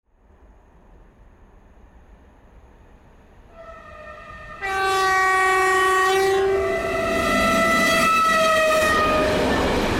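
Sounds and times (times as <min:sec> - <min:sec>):
klaxon horn: 0:03.5 - 0:09.8.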